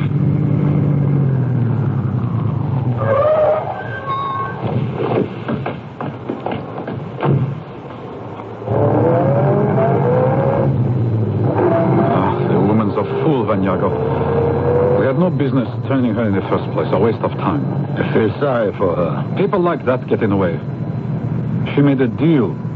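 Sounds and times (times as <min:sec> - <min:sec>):
car engine revving and pulling away: 0:00.0 - 0:05.3, 0:08.6 - 0:22.7
clunks and rattles: 0:02.9 - 0:09.0
speech: 0:16.2 - 0:20.8, 0:21.8 - 0:22.7.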